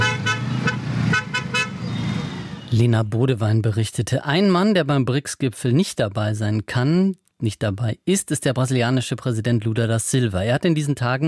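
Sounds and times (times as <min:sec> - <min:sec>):
car horns honking in traffic chaos: 0:00.0 - 0:02.6
steady rumble of road traffic: 0:00.0 - 0:02.9
speech: 0:02.7 - 0:11.2.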